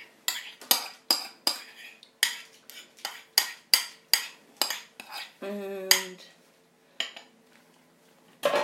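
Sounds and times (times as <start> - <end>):
spoon clinking and scraping against a bowl while stirring caramel of butter and sugar: 0.0 - 6.0.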